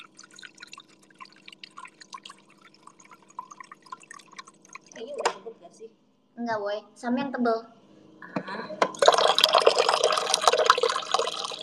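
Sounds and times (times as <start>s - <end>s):
water dripping and bubbling from a running water generator: 0.0s - 5.4s, 8.9s - 11.6s
speech: 5.7s - 7.8s.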